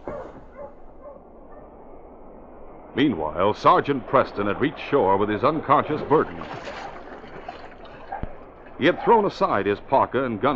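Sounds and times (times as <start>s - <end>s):
malamute sled dog barking: 0.0s - 1.7s, 8.0s - 9.2s
steady hiss: 0.0s - 10.5s
speech: 3.0s - 6.9s, 8.8s - 10.5s.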